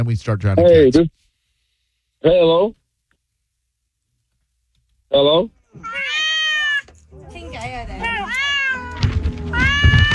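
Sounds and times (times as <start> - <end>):
speech: 0.0 - 1.2, 2.2 - 2.8, 5.1 - 6.2
cat meowing: 5.7 - 6.9, 7.9 - 10.1.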